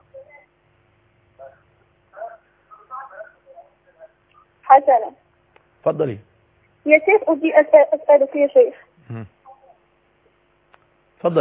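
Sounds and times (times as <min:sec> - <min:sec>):
television sound from a caller's end in Morocco over a telephone line: 0:00.0 - 0:00.5, 0:01.3 - 0:05.2, 0:06.9 - 0:08.8
low steady hum on a telephone line: 0:00.0 - 0:11.4
speech: 0:04.8 - 0:05.2, 0:05.8 - 0:09.4.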